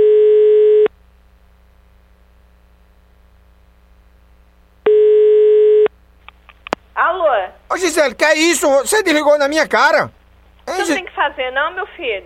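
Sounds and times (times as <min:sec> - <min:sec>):
telephone ringback tone while a call is placed: 0:00.0 - 0:00.9, 0:04.9 - 0:05.9
speech: 0:07.8 - 0:12.2.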